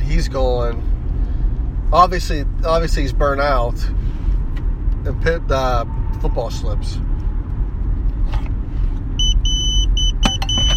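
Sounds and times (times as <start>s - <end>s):
constant low rumble of noise: 0.0s - 10.7s
speech: 0.2s - 1.0s, 1.9s - 4.0s, 5.0s - 7.1s
hospital pager beeping: 9.2s - 10.7s.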